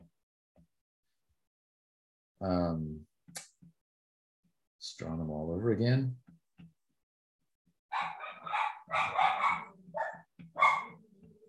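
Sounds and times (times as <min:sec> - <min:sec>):
speech: 0:02.4 - 0:03.4, 0:04.8 - 0:06.2
dogs barking excitedly: 0:07.9 - 0:11.0.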